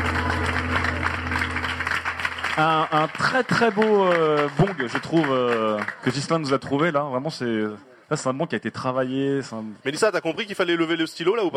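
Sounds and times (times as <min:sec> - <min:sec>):
low steady hum: 0:00.0 - 0:03.3
audience applause: 0:00.0 - 0:06.6
speech: 0:02.6 - 0:11.5.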